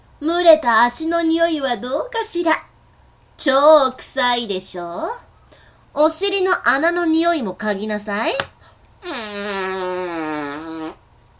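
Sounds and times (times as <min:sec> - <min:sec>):
speech: 0:00.2 - 0:02.7, 0:03.4 - 0:05.3, 0:06.0 - 0:10.2
very large fart: 0:09.0 - 0:11.3.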